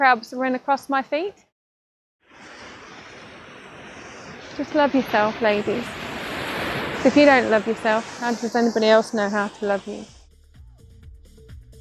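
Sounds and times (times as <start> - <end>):
speech: 0.0 - 1.5, 4.6 - 6.0, 7.0 - 10.2
ocean surf roaring: 2.3 - 10.1.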